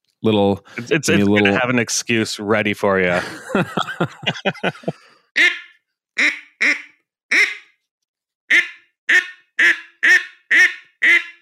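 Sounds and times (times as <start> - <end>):
speech: 0.2 - 5.6
laughter: 0.8 - 1.8, 3.1 - 5.2
duck call blown imitating quacks: 5.4 - 7.8, 8.5 - 11.4.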